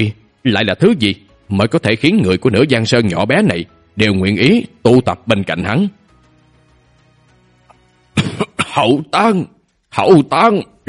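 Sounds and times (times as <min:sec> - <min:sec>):
speech: 0:00.0 - 0:06.0, 0:08.8 - 0:10.8
voice imitating dry, hoarse, rasping coughing: 0:08.2 - 0:08.9.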